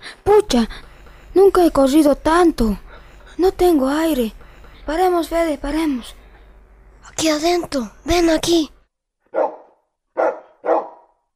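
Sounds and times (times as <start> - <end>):
speech: 0.5 - 2.8, 3.4 - 6.2, 7.1 - 9.6, 10.2 - 10.4
stray dog barking in a vacant lot: 9.3 - 11.2.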